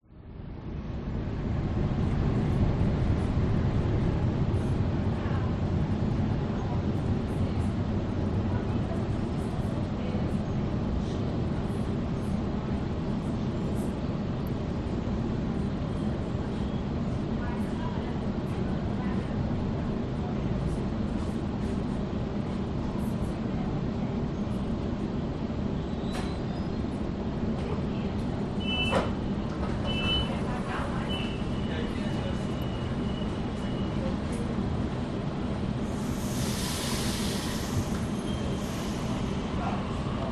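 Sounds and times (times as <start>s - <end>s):
metro train interior between stations: 0.0s - 40.2s
metro train doors: 26.0s - 26.8s, 27.5s - 34.5s, 35.8s - 40.2s.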